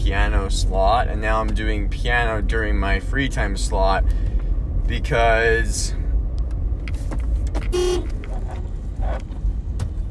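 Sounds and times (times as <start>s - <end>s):
continuous road traffic noise: 0.0s - 10.0s
speech: 0.1s - 4.3s, 4.9s - 6.0s, 7.1s - 9.3s
bus horn honk: 7.7s - 8.2s.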